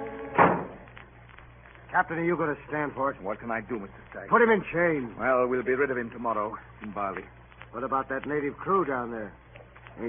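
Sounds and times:
low room hum: 0.0 - 10.0
door pushed shut with a dull solid thud: 0.3 - 0.8
speech: 2.0 - 9.4.

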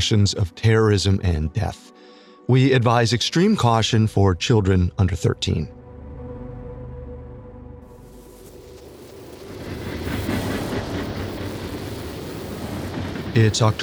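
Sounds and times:
speech: 0.0 - 5.8, 13.4 - 13.8
passenger train chugging along tracks: 8.8 - 13.8.

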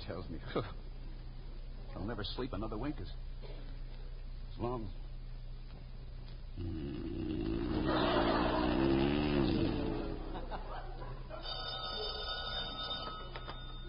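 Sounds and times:
faint murmur of noise: 0.0 - 13.8
speech: 0.1 - 0.9, 2.0 - 3.6, 4.6 - 5.0, 6.6 - 7.2
laughter: 7.7 - 12.1
telephone bell ringing: 11.4 - 13.8.

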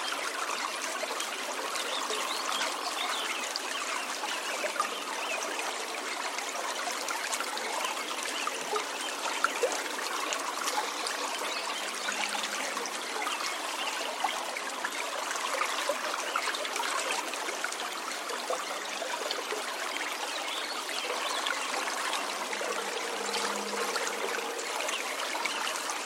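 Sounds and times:
water trickling: 0.0 - 26.0
Upper McCloud River rushing in Shasta-Trinity National Forest California: 21.1 - 26.0.

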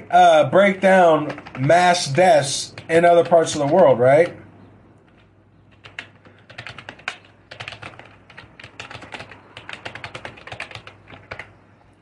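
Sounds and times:
speech: 0.1 - 4.4
fast typing on a computer keyboard: 1.2 - 2.0, 2.7 - 3.9, 5.0 - 11.6.

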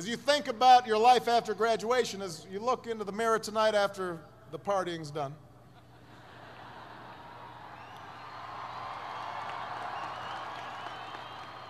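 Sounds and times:
speech: 0.0 - 5.4
large crowd cheering and shouting: 6.3 - 11.6
large crowd applauding: 7.5 - 11.6.

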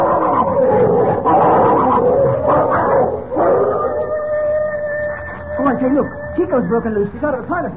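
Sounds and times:
several dogs fighting, snarling, barking and howling: 0.0 - 6.0
dogs yelping and whining: 0.0 - 7.0
speech: 6.0 - 7.7.

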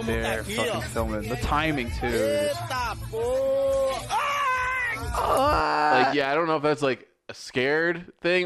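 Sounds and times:
speech: 0.0 - 4.3, 5.0 - 8.4
person screaming in pain: 3.2 - 6.2.

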